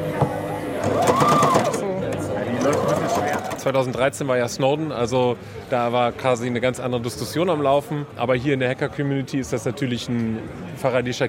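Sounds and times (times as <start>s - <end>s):
sewing machine running: 0.8s - 3.8s
speech: 3.6s - 11.2s.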